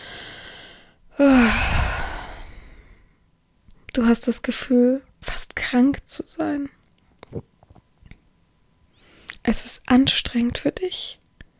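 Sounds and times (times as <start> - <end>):
heavy breathing: 0.0 - 3.2
speech: 4.0 - 7.5, 9.5 - 11.2.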